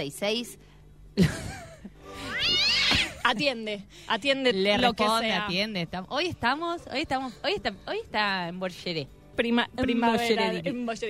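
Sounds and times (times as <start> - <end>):
speech: 0.0 - 1.7, 2.4 - 11.0
cat meowing: 2.3 - 3.2.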